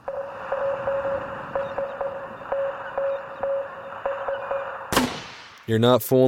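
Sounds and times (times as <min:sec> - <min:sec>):
constant hiss of radio static: 0:00.0 - 0:05.0
mid-pitched Morse code beeps signalling SOS: 0:00.0 - 0:05.0
speech: 0:05.7 - 0:06.2.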